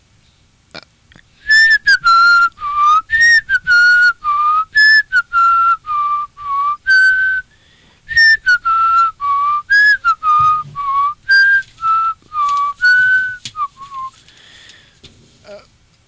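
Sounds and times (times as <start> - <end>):
person whistling a Christmas song melody: 1.4 - 14.3.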